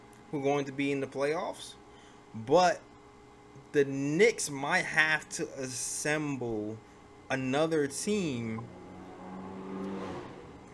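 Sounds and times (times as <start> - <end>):
speech: 0.3 - 2.9, 3.6 - 8.8
car passing by outside: 8.7 - 10.7.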